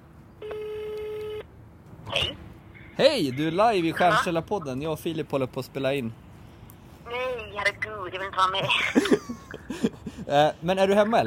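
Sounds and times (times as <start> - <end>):
tinny phone ringback tone through a speakerphone: 0.4 - 1.5
speech: 3.0 - 6.2, 8.1 - 11.2
laughter: 8.6 - 11.2.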